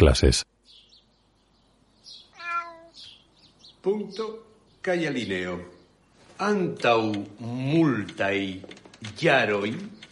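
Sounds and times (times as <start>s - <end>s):
speech: 0.0s - 0.5s, 3.8s - 5.8s, 6.4s - 10.0s
cat meowing on the sill of a half-open window: 2.3s - 3.1s.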